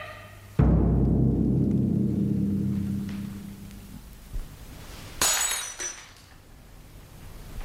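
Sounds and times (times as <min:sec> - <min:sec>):
long ringing rumbling decay: 0:00.6 - 0:04.3
bright tinkle of glass shards: 0:05.2 - 0:06.3
dropped glass shattering with a sharp crash: 0:05.2 - 0:06.3.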